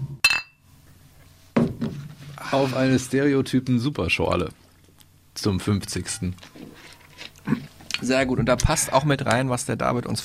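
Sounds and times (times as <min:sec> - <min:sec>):
glasses clinking in a toast: 0:00.2 - 0:00.6
speech: 0:02.4 - 0:04.6, 0:05.4 - 0:06.7, 0:07.4 - 0:10.2.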